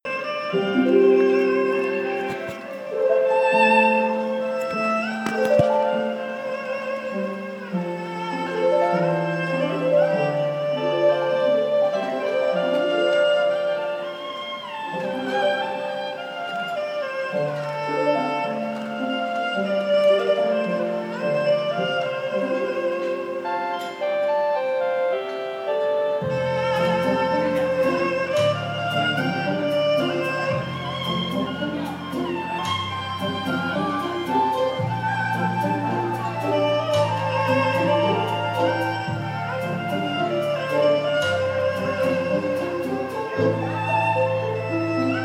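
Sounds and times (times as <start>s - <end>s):
solo Chinese erhu playing opera music: 0.0s - 45.2s.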